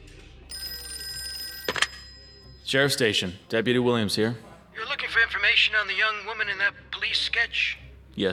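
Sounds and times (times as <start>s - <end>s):
telephone bell ringing at a sheriff's station: 0.5s - 3.4s
speech: 2.7s - 4.5s, 5.4s - 8.3s.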